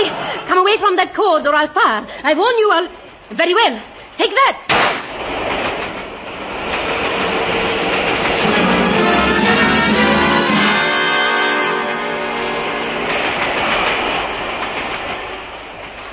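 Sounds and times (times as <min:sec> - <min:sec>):
speech: 0:00.7 - 0:05.0
train wheels clattering along the rails: 0:04.8 - 0:16.1.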